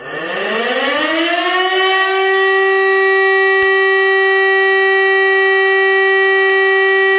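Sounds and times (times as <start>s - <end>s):
civil defense warning siren wailing: 0.0s - 7.1s.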